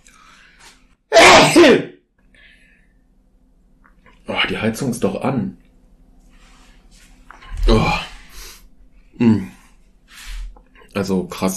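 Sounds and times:
person sneezing: 0:01.2 - 0:01.8
speech: 0:04.6 - 0:05.7, 0:09.2 - 0:09.5, 0:11.0 - 0:11.5.

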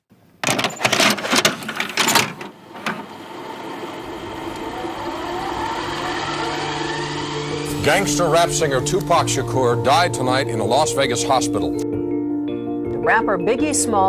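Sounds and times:
plastic clicks and clunks of cassette tape loaded into a deck: 0:00.4 - 0:03.8
cassette deck mechanical hum: 0:00.4 - 0:09.2
speech: 0:07.9 - 0:12.0, 0:13.1 - 0:14.0.

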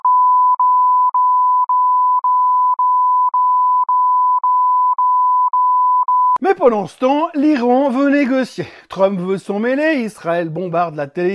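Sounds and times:
censorship bleep tones: 0:00.0 - 0:06.4
speech: 0:06.5 - 0:11.3.

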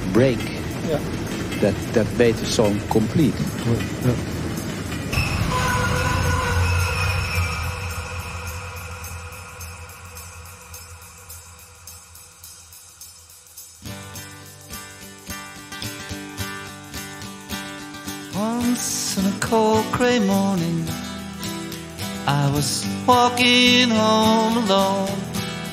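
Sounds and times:
train rumbling past on rails: 0:00.0 - 0:12.6
music with a regular beat: 0:00.0 - 0:25.7
speech: 0:00.2 - 0:04.4, 0:22.6 - 0:25.2.

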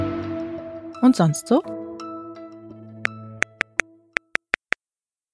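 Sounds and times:
speech: 0:01.1 - 0:01.8
sharp ticks marking luge finish-time gaps: 0:03.4 - 0:04.8.

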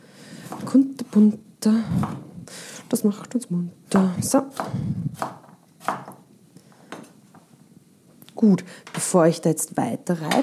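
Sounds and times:
knife cutting down through an upright sweet potato for soup: 0:00.4 - 0:01.3, 0:03.9 - 0:06.2
speech: 0:00.7 - 0:02.3, 0:02.9 - 0:05.4, 0:08.4 - 0:10.4.

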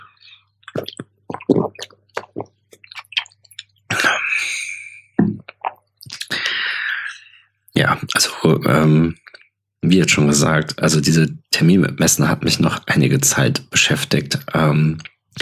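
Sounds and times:
person sipping a drink: 0:00.0 - 0:07.4
swallowing gulps: 0:00.0 - 0:07.4
speech: 0:07.8 - 0:09.2, 0:09.8 - 0:15.4.

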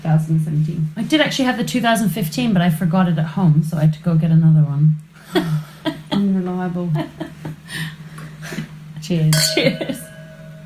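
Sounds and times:
speech: 0:00.0 - 0:05.7, 0:06.6 - 0:07.8, 0:09.1 - 0:10.1
steady low hum: 0:09.3 - 0:10.6
wine glasses of Morgon Classique 2017 red wine clinking in a toast: 0:09.3 - 0:10.6.

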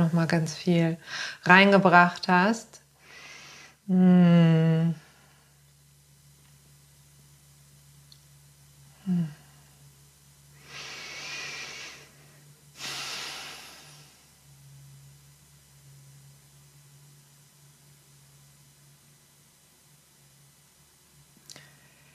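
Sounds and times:
speech: 0:00.0 - 0:02.8, 0:03.9 - 0:05.0, 0:09.1 - 0:09.4
slow deep breathing: 0:03.0 - 0:03.8, 0:10.6 - 0:14.2.

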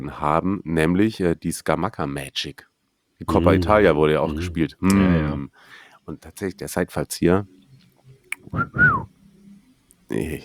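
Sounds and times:
speech: 0:00.0 - 0:07.6, 0:08.4 - 0:09.2, 0:10.1 - 0:10.4
person whistling: 0:08.4 - 0:09.1.

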